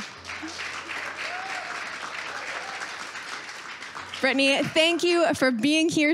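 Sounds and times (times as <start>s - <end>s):
studio audience applause: 0.0s - 5.8s
faint whoops from a studio audience: 0.4s - 3.0s
speech: 4.2s - 6.1s.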